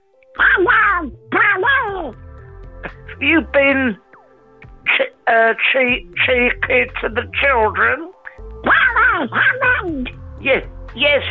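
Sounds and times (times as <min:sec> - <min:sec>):
person imitating a cartoon duck voice: 0:00.4 - 0:02.2, 0:08.6 - 0:10.1
speech: 0:03.2 - 0:04.0, 0:05.3 - 0:11.2.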